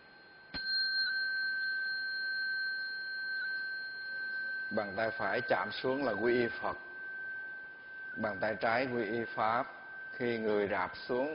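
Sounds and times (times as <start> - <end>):
Buddhist ritual bell struck for prostrations: 0.0 - 11.3
speech: 4.7 - 6.9, 8.2 - 11.3.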